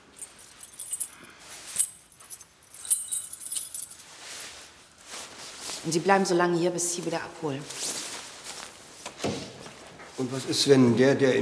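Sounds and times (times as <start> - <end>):
keys jangling as they are picked up: 0.0 - 4.3
speech: 5.8 - 7.9, 10.2 - 11.3.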